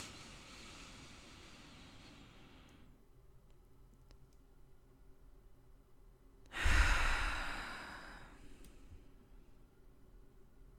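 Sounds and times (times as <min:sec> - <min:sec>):
deep breaths in and out: 0:00.0 - 0:03.0, 0:06.5 - 0:09.4.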